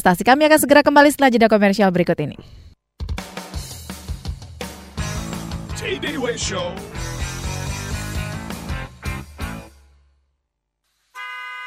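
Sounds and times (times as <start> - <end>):
speech: 0.0 - 2.7, 5.8 - 6.9
car horns honking in a traffic jam around Jakarta: 11.1 - 11.6.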